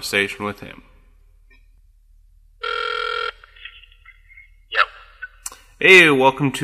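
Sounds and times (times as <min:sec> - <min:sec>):
speech: 0:00.0 - 0:00.9, 0:05.8 - 0:06.6
outgoing phone ring tone: 0:02.6 - 0:03.8.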